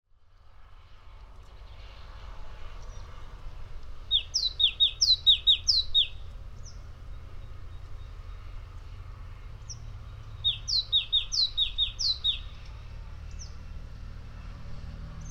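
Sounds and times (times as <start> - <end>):
great tit song, Parus major: 4.1 - 6.8, 9.7 - 13.6.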